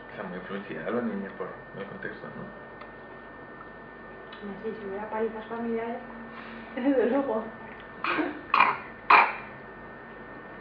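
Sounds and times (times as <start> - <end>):
speech: 0.2 - 2.7, 4.4 - 8.4
raspy coughs: 8.0 - 9.5
throat clearing: 8.0 - 9.5.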